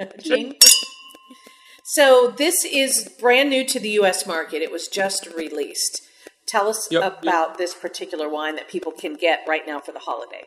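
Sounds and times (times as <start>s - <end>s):
soft voices: 0.0s - 0.6s, 1.9s - 3.3s, 6.6s - 7.8s
speech: 0.0s - 0.8s, 1.9s - 10.4s
Brut Nature wine glasses clinking in a toast: 0.3s - 1.5s.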